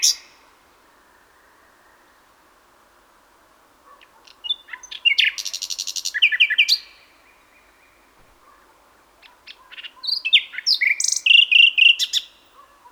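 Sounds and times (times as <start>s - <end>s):
common nightingale Luscinia megarhynchos singing: 0.0s - 0.5s, 4.0s - 8.0s, 9.2s - 12.6s.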